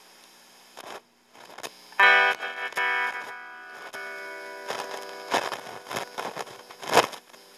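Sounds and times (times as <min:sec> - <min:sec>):
1981 Guild Model 4 amplifier knobs turning: 0:02.0 - 0:07.0.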